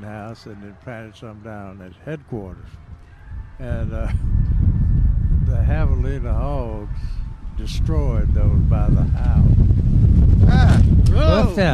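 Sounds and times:
speech: 0.0s - 2.9s, 3.6s - 4.5s, 5.5s - 11.7s
wind buffeting a microphone: 2.6s - 11.7s.

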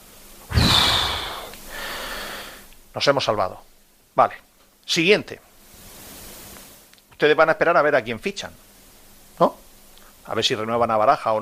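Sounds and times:
deep breath: 0.5s - 2.7s
speech: 3.0s - 5.5s, 7.2s - 8.6s, 9.4s - 9.6s, 10.3s - 11.4s.

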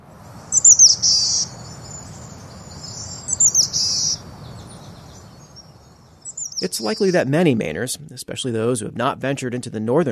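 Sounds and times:
boreal chickadee giving buzzy wheezy calls: 0.4s - 7.2s
speech: 6.6s - 10.1s.

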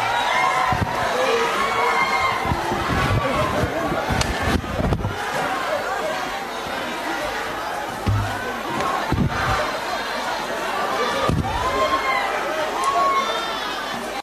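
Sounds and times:
crowd shouting and yelling in parliament chamber: 0.0s - 14.2s
sharp thuds and bangs: 8.0s - 8.5s.

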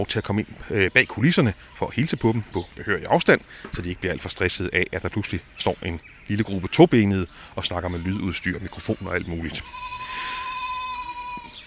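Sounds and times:
speech: 0.0s - 10.3s
faint outdoor hum: 0.0s - 11.6s
goat bleating in a long wavering cry: 7.9s - 11.6s.

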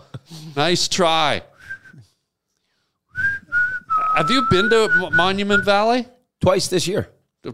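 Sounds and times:
speech: 0.3s - 1.5s, 4.2s - 7.5s
person whistling: 1.6s - 2.2s, 3.1s - 5.8s.

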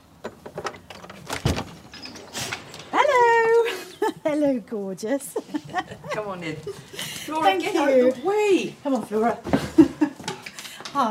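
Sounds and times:
door clunking and rattling as it is pulled open: 0.2s - 4.2s
laughter: 3.6s - 4.5s, 5.2s - 7.4s, 9.6s - 10.4s
speech: 4.3s - 9.6s.

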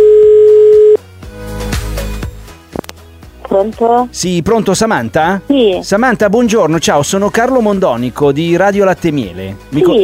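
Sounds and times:
telephone dial tone: 0.0s - 1.0s
speech: 3.6s - 10.0s.

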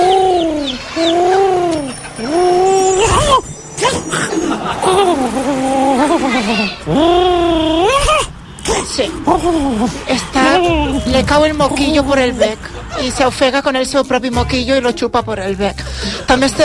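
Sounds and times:
person imitating a pigeon cooing: 0.0s - 11.3s
laughter: 4.1s - 7.2s, 12.4s - 13.5s
speech: 9.3s - 16.6s.

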